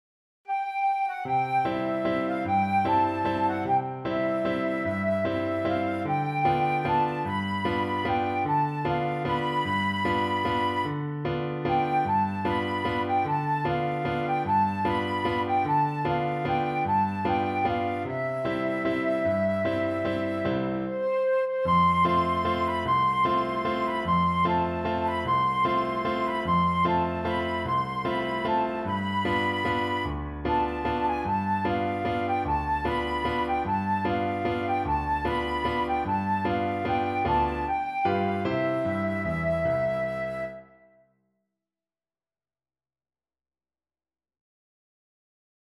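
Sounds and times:
flute melody: 0.5s - 41.1s.

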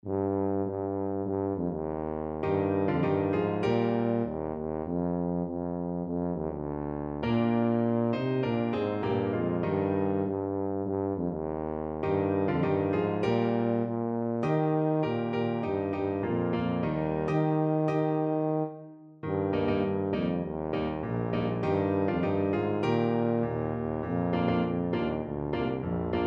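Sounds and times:
tuba playing: 0.0s - 26.2s.

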